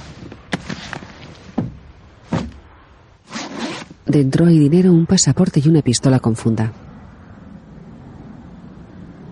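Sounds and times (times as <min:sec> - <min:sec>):
bag being unzipped with a raspy zip: 0:03.2 - 0:04.0
speech: 0:04.1 - 0:06.9.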